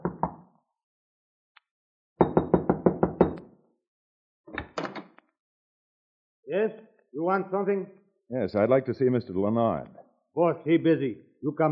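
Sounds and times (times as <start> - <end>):
firm knocking on a wooden shack door: 2.2 - 3.4
speech: 6.5 - 11.7.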